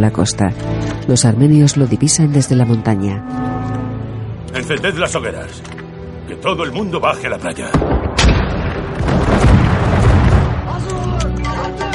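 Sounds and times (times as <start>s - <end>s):
speech: 0.0s - 3.8s, 4.5s - 8.0s
mortars fired by troops on a hillside: 7.7s - 10.9s.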